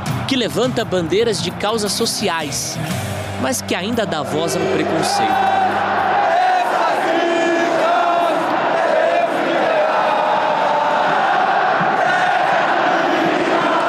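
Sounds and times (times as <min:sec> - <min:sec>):
speech: 0:00.3 - 0:05.9
huge crowd of football fans chanting in unison at a stadium in Brazil: 0:04.5 - 0:13.8.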